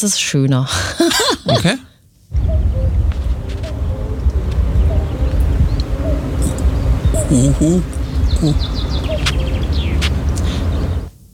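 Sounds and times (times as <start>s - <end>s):
speech: 0.0s - 3.0s, 7.3s - 9.1s
steady outdoor hiss: 0.0s - 11.3s
laughter: 0.8s - 1.8s
other birds chirping: 0.8s - 11.2s
common cuckoo two-note calls from a distance: 2.4s - 11.1s.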